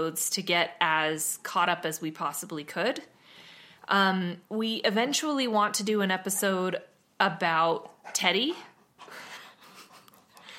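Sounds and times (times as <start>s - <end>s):
speech: 0.0s - 3.2s, 3.9s - 8.7s
male dog panting: 7.6s - 10.5s.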